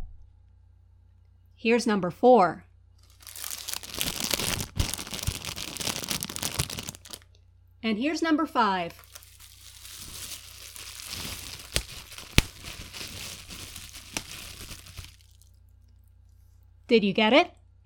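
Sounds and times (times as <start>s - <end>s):
speech: 1.6s - 2.7s, 7.9s - 9.0s, 16.9s - 17.6s
bubble wrap crackling for campfire sound effect: 3.0s - 7.3s, 8.8s - 15.6s
cellophane scrunched by hand for campfire sound effect: 3.0s - 7.3s, 8.8s - 15.6s.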